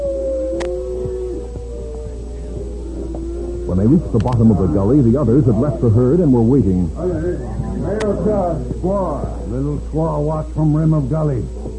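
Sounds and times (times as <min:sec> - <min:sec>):
voice imitating a coyote's wailing howl as a signal: 0:00.0 - 0:04.8
speech: 0:03.7 - 0:11.6.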